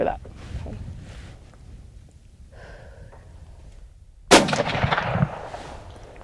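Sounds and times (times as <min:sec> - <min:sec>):
gunshot from a hunting gun: 0:04.3 - 0:05.9.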